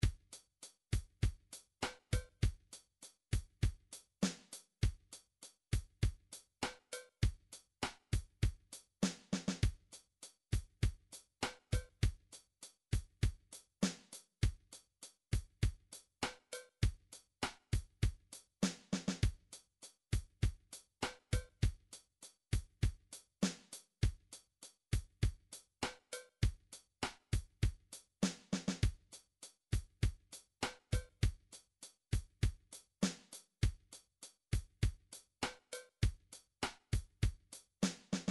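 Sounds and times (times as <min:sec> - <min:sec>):
MIDI drums ballad: 0:00.0 - 0:38.3.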